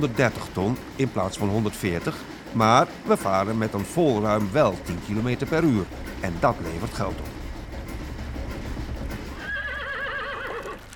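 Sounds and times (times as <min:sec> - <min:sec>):
speech: 0:00.0 - 0:07.4
horse hooves clopping: 0:00.0 - 0:10.9
horse whinnying: 0:09.3 - 0:10.9.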